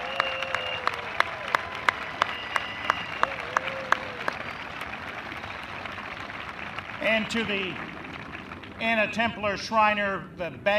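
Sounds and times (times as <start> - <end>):
faint high whistling tones: 0.0 - 1.0, 1.9 - 3.6
audience at an evening ceremony applauding a band: 0.0 - 9.0
speech: 7.0 - 8.0, 8.8 - 10.7.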